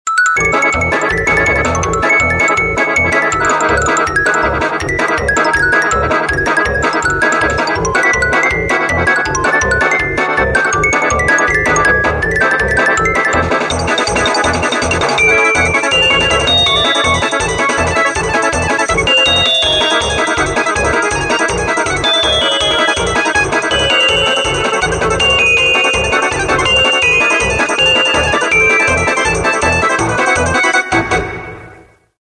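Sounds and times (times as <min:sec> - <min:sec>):
gallery background music: 0:00.1 - 0:32.1.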